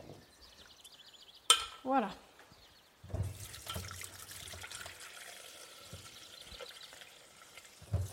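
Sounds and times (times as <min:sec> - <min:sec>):
speech: 0:01.8 - 0:02.2
water running from a tap while washing a blender: 0:03.4 - 0:08.1.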